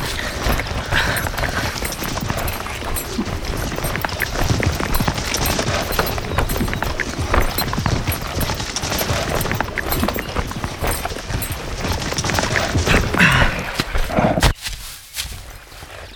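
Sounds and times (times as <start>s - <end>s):
horse hooves galloping as rider rides off: 0.0s - 14.4s.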